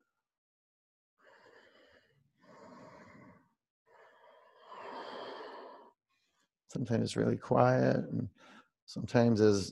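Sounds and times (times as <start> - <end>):
ujjayi breathing through a constricted throat during yoga practice: 1.2 - 6.6, 8.3 - 8.8
speech: 6.8 - 9.7.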